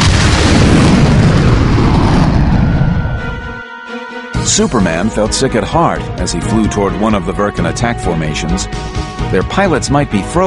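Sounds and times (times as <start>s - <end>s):
crackling debris from exploding spaceships: 0.0s - 2.8s
spaceships exploding in flames with rumbling blast: 0.0s - 3.6s
speech: 4.6s - 10.4s.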